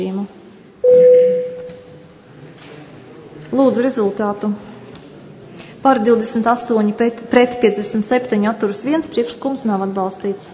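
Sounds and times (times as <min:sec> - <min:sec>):
parliament electric bell ringing to call deputies to vote: 0:00.8 - 0:01.7
speech: 0:03.6 - 0:04.7, 0:05.8 - 0:10.5.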